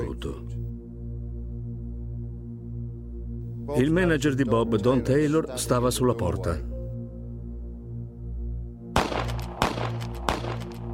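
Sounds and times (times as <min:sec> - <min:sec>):
low droning background: 0:00.0 - 0:10.9
speech: 0:03.7 - 0:06.7
pistol shots: 0:09.0 - 0:10.9.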